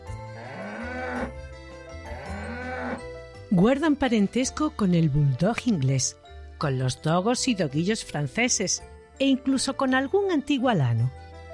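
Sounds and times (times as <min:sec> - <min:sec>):
cow mooing: 0:00.2 - 0:01.4, 0:02.0 - 0:03.1
speech: 0:03.5 - 0:11.2.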